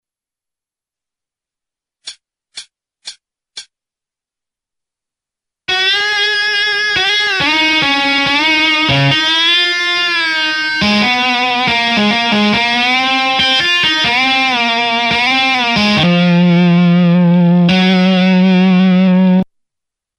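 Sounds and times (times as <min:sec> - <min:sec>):
solo guitar: 0:05.7 - 0:19.5.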